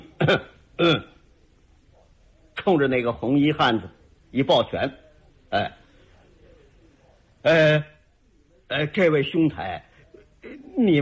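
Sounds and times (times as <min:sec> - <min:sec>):
man imitating an old man clearing his throat: 0:00.0 - 0:01.2
speech: 0:00.3 - 0:01.1, 0:02.6 - 0:05.8, 0:07.4 - 0:07.9, 0:08.7 - 0:11.0.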